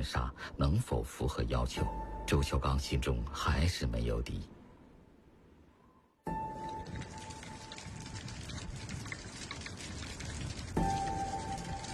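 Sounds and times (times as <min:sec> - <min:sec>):
speech: 0:00.0 - 0:04.6
heavy rain pouring on hard surfaces: 0:06.4 - 0:11.9.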